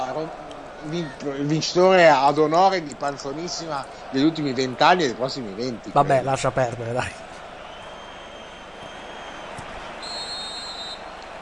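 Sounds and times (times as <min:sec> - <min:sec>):
crowd noise: 0:00.0 - 0:11.4
speech: 0:00.2 - 0:07.3
sharp whistle blast: 0:07.7 - 0:11.2.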